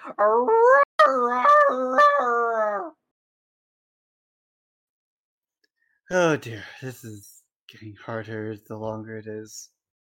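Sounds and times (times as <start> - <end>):
husky-like dog howling in a stable: 0.0 - 3.0
speech: 0.2 - 1.5, 6.1 - 9.8.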